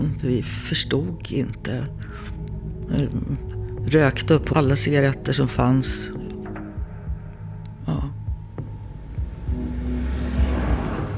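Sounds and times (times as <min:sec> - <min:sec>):
faint droning hum: 0:00.0 - 0:11.1
road-and-engine rumble inside a moving car: 0:00.0 - 0:11.1
speech: 0:00.2 - 0:06.2.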